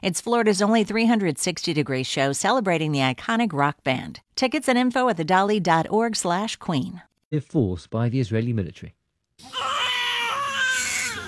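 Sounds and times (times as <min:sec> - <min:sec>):
speech: 0:00.0 - 0:09.8
newborn baby crying in a Nablus hospital: 0:09.4 - 0:11.2.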